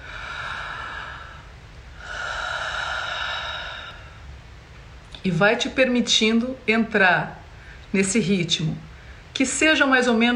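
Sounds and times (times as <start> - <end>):
slow breathing, inhaling through the mouth and exhaling gently: 0.0 - 4.4, 7.5 - 7.9
speech: 5.2 - 10.3.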